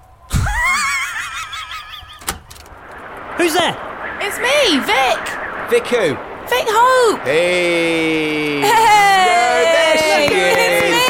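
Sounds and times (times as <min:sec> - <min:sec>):
laughter: 0:00.4 - 0:02.2, 0:08.4 - 0:11.0
wooden log cabin door creaking open: 0:02.2 - 0:02.7
speech: 0:03.4 - 0:09.1.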